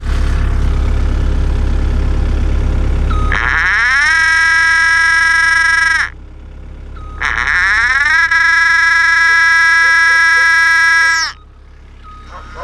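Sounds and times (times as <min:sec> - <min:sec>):
compact excavator final drive noise with right track not moving: 0:00.0 - 0:12.6.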